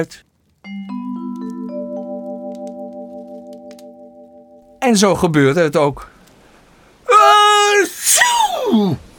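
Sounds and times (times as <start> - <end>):
speech: 0.0 - 0.8, 4.8 - 6.1, 7.2 - 9.1
voice acting out a huge exaggerated whale sneeze: 7.2 - 9.0.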